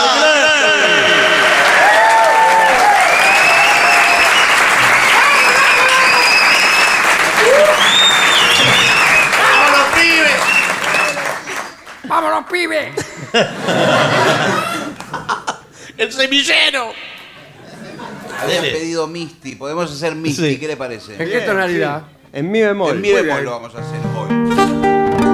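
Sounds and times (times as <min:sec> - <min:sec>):
audience applause welcoming a trumpet player: 0:00.8 - 0:12.1
audience cheers and whistles: 0:01.0 - 0:11.6
laughter: 0:04.8 - 0:06.4, 0:12.9 - 0:15.8, 0:17.4 - 0:18.8
speech: 0:12.5 - 0:14.7, 0:16.0 - 0:17.1, 0:18.4 - 0:24.8.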